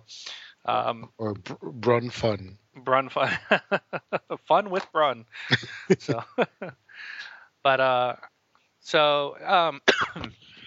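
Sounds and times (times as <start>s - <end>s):
speech: 0.1s - 10.4s
coughing into a microphone: 9.8s - 10.6s.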